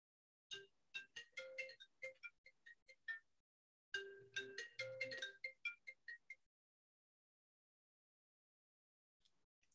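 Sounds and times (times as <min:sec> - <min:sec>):
cell phone ringtone: 0:00.5 - 0:03.3, 0:04.0 - 0:06.5.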